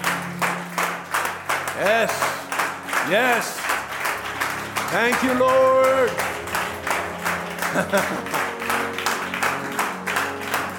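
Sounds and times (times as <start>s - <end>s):
congregation clapping hands in a rhythmic beat: 0.0s - 10.7s
speech: 1.8s - 2.4s, 3.0s - 3.6s, 4.9s - 6.3s, 7.7s - 8.4s
laughter: 7.5s - 8.6s.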